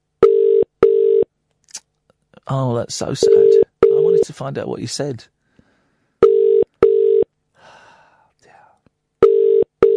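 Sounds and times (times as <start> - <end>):
telephone ringback tone on an outgoing call: 0.2 - 1.2, 6.2 - 7.3, 9.2 - 9.9
speech: 2.5 - 5.4.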